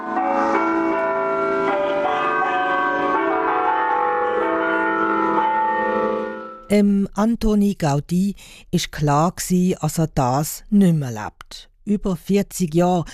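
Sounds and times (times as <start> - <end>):
church bells of the Sagrada Familia in Barcelona ringing: 0.0 - 6.7
speech: 6.7 - 13.1.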